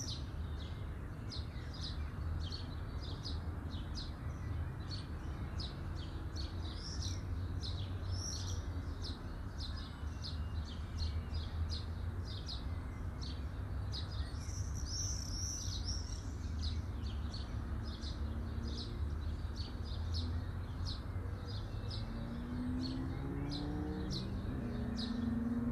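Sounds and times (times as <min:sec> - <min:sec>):
birds chirping at midday: 0:00.0 - 0:25.6.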